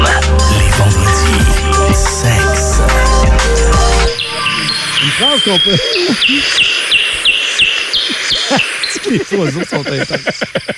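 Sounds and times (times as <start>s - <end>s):
dense background of other birdsong outdoors: 0.7s - 10.7s
bird repeating sharp high chirps: 4.1s - 9.2s
laughter: 4.3s - 6.6s, 8.1s - 10.7s
speech: 5.4s - 6.7s, 8.5s - 10.7s.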